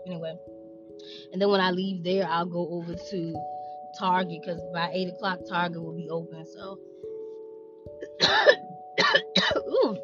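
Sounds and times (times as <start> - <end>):
speech: 0.1 - 6.9
person clearing their throat: 8.0 - 10.0
person with a bad cough coughing: 8.0 - 10.0.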